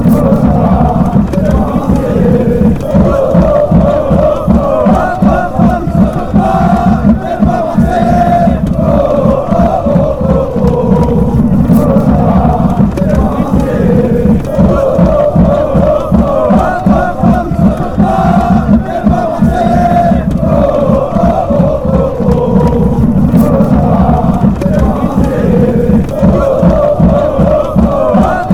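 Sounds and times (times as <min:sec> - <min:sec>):
fans chanting: 0:00.0 - 0:28.5.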